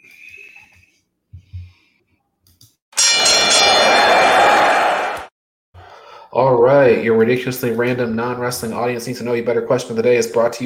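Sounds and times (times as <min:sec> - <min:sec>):
loud bright bell ringing with metallic clatter: 0:03.0 - 0:05.2
speech: 0:06.4 - 0:10.6.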